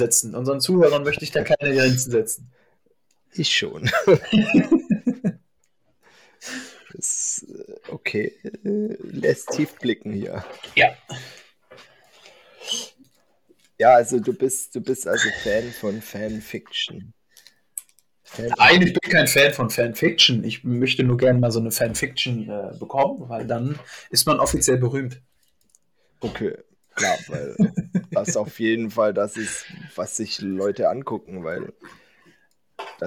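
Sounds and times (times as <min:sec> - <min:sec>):
speech: 0:00.0 - 0:02.6, 0:03.3 - 0:04.8, 0:06.4 - 0:11.9, 0:13.8 - 0:17.2, 0:18.3 - 0:25.3, 0:26.2 - 0:32.0
laughter: 0:03.8 - 0:05.4, 0:27.0 - 0:28.6
sharp clicks: 0:17.4 - 0:18.1.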